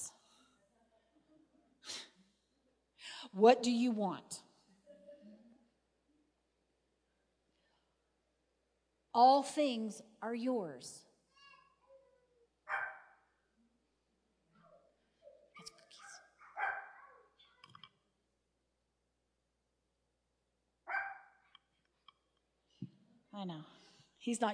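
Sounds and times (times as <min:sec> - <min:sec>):
speech: 0:03.3 - 0:04.4, 0:09.2 - 0:11.0, 0:23.4 - 0:24.5
dog barking: 0:12.7 - 0:13.3, 0:16.0 - 0:17.3, 0:20.9 - 0:21.4.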